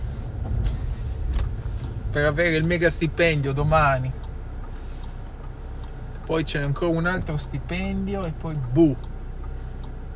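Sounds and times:
low constant rumble: 0:00.0 - 0:10.1
speech: 0:02.1 - 0:04.2, 0:06.3 - 0:09.1
clock ticking: 0:02.2 - 0:10.1.

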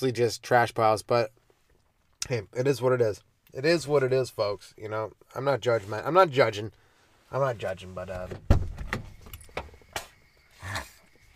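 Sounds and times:
speech: 0:00.0 - 0:01.4, 0:02.2 - 0:08.6
car door opening: 0:08.1 - 0:10.1.

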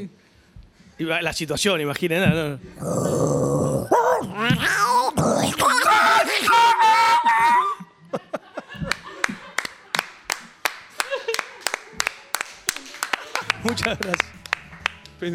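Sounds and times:
speech: 0:00.0 - 0:00.2, 0:01.0 - 0:03.7, 0:13.8 - 0:14.4, 0:15.2 - 0:15.3
voice imitating a snarling yowling dog-and-cat fight: 0:02.8 - 0:07.6
laughter: 0:05.6 - 0:14.4
quick sharp claps or slaps: 0:08.8 - 0:15.3.

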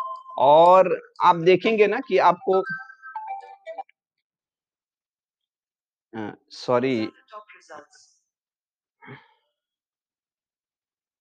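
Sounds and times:
phone ringtone playing a short bright electronic melody: 0:00.0 - 0:00.6, 0:02.0 - 0:03.9
speech: 0:00.4 - 0:02.9, 0:06.1 - 0:08.1, 0:09.0 - 0:09.2.

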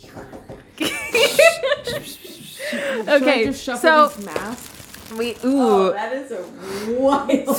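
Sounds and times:
speech: 0:00.1 - 0:00.4, 0:03.0 - 0:07.5
people laughing: 0:00.8 - 0:03.2
two N95 face masks crinkling against microphone: 0:02.4 - 0:05.9.

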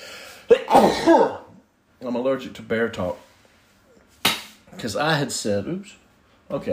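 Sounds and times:
person sneezing: 0:00.4 - 0:01.6
speech: 0:00.8 - 0:01.4, 0:02.0 - 0:03.2, 0:04.8 - 0:06.7.

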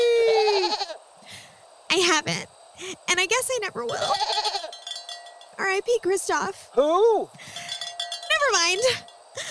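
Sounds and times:
goat bleating at a goat yoga session: 0:00.2 - 0:01.0, 0:04.0 - 0:04.8
speech: 0:02.2 - 0:04.6, 0:05.6 - 0:07.4, 0:08.5 - 0:09.1.

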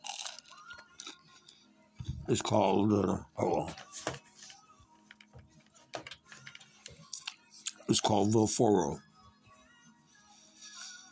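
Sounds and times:
chewing a crisp little brown wafer with a meal: 0:00.0 - 0:01.4
speech: 0:02.3 - 0:03.9, 0:08.1 - 0:09.1.

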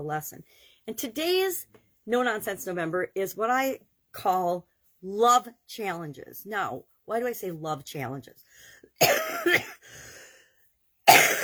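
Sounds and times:
speech: 0:00.0 - 0:10.1
person coughing: 0:09.0 - 0:09.9, 0:11.1 - 0:11.4.

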